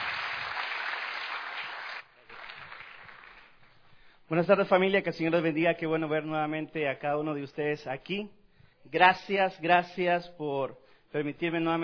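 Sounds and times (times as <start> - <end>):
audience applauding warmly: 0.0 - 3.8
speech: 4.3 - 11.8.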